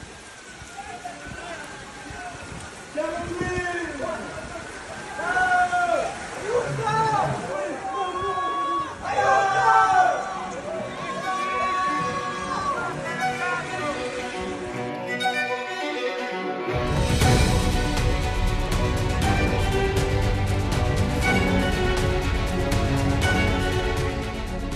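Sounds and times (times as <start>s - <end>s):
loud steady roar of rushing floodwater in Romagna Italy: 0.0s - 24.7s
raised voices of rescuers during a flood: 0.2s - 14.6s
urgent shouts and cries for help during a flood: 3.2s - 14.2s.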